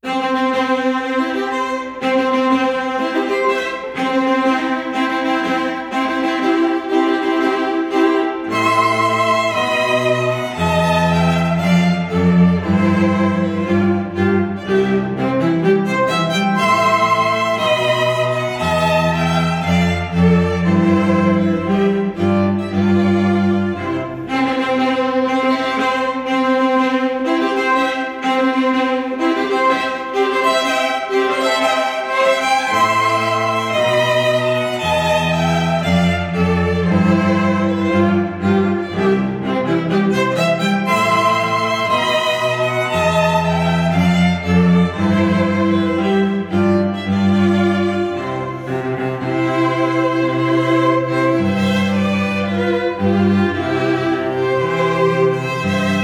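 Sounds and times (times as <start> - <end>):
string trio playing: 0.0 - 56.0.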